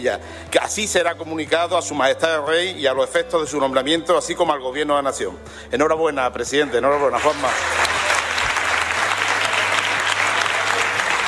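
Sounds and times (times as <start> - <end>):
speech: 0.0 - 8.0
applause from a large assembly in a parliament chamber: 7.0 - 11.2.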